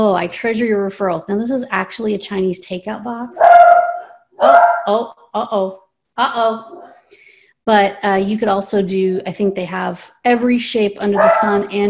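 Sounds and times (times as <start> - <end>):
speech: 0.0 - 6.9, 7.7 - 11.8
small dog yapping in high-pitched bursts: 3.4 - 4.9.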